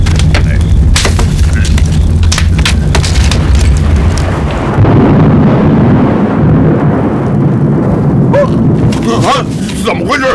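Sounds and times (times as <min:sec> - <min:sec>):
loud thunder booming and rumbling: 0:00.0 - 0:10.3.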